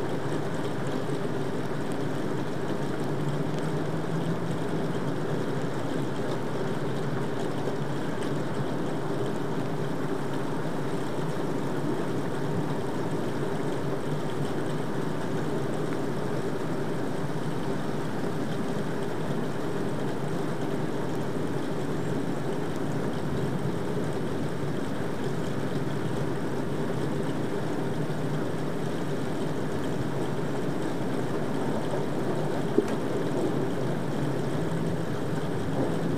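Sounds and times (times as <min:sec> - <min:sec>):
light rain: 0:00.0 - 0:36.1
thunderstorm rumbling: 0:35.6 - 0:36.1.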